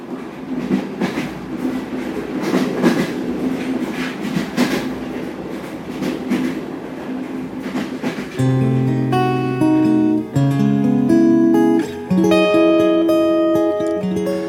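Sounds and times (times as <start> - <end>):
train carriage rattling on rails heard from inside: 0.0 - 10.4
rhythmic clacks of train on rails: 0.4 - 6.7, 7.5 - 14.4.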